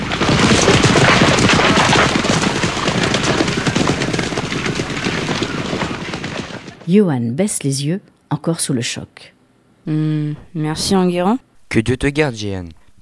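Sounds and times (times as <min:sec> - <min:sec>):
many horses galloping past: 0:00.0 - 0:07.1
speech: 0:06.9 - 0:12.8.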